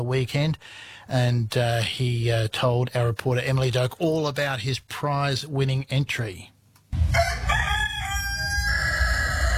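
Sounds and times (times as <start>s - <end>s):
speech: 0.0s - 6.5s
black and white spotted show rooster crowing: 7.0s - 9.5s.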